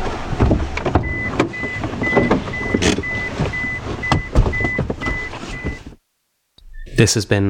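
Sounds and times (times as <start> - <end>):
clunks and rattles: 0.0 - 6.0
car engine rumbling: 0.0 - 6.8
steady high electronic beeping: 1.0 - 5.8
speech: 7.0 - 7.4.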